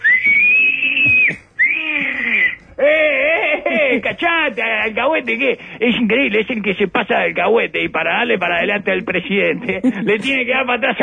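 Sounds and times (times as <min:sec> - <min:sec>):
person whistling in disapproval: 0:00.0 - 0:02.7
laughter: 0:02.8 - 0:04.2
speech: 0:04.0 - 0:11.0.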